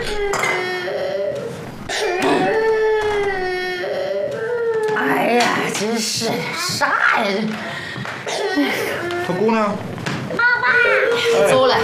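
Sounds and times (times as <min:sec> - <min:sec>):
child crying: 0:00.0 - 0:05.7, 0:10.4 - 0:11.8
speech: 0:05.8 - 0:09.9, 0:11.1 - 0:11.8.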